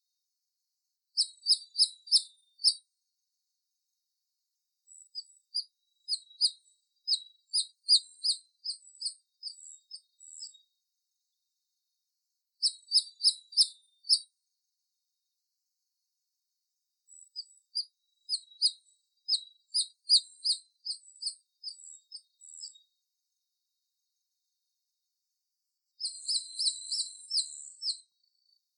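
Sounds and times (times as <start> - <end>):
giant nightjar singing: 1.2 - 2.8, 4.9 - 10.6, 12.6 - 14.3, 17.1 - 22.8, 26.0 - 28.6.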